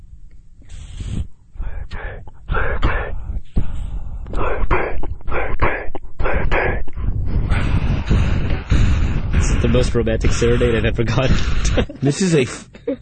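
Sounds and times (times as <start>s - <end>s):
music track of eerie ghostly vocals with moans and wails: 1.6s - 11.8s
speech: 9.7s - 13.0s.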